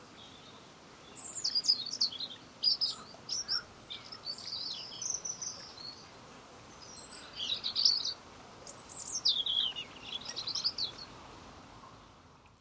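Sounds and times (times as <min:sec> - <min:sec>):
European robin Erithacus rubecula singing: 0:00.0 - 0:11.2
low background hiss: 0:00.0 - 0:12.5.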